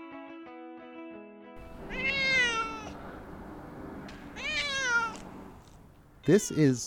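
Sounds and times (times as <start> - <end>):
white brown and black cat stuck in a tree meowing agitatedly: 1.6 - 3.0, 4.3 - 5.4, 6.2 - 6.8
speech: 6.3 - 6.8.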